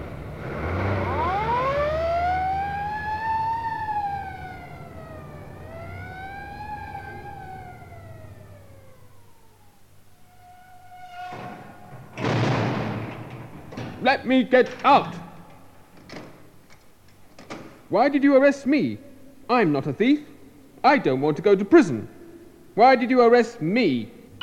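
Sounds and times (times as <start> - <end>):
police car siren wailing: 0.3 - 11.9
speech: 14.1 - 15.2, 17.9 - 22.1, 22.7 - 24.1.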